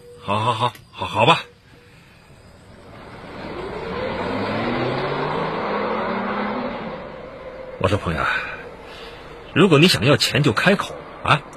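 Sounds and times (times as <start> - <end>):
speech: 0.2 - 1.5, 7.8 - 8.5, 9.5 - 11.5
car engine running as the car is driven: 2.5 - 11.5.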